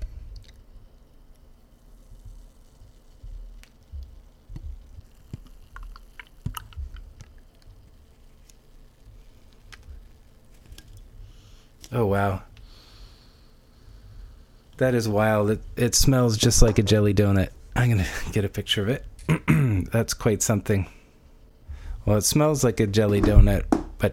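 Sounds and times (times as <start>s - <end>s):
raspberry sour jelly beer poured from a can: 5.1s - 7.7s
speech: 11.9s - 12.5s, 14.8s - 21.0s, 22.0s - 24.1s.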